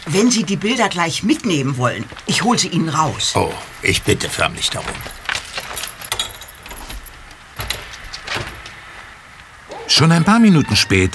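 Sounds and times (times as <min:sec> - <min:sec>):
speech: 0:00.1 - 0:05.2, 0:10.0 - 0:11.1
keys jangling and clinking against metal: 0:04.8 - 0:08.6.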